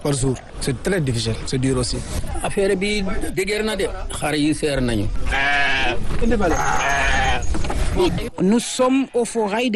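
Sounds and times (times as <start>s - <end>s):
speech: 0.0s - 9.7s
sheep bleating at an outdoor livestock market: 5.2s - 7.5s.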